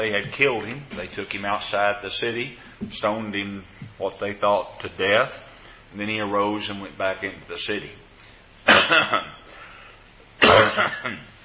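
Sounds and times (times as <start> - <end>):
speech: 0.0 - 9.6, 10.4 - 11.3
person coughing: 8.7 - 9.4, 10.4 - 11.3.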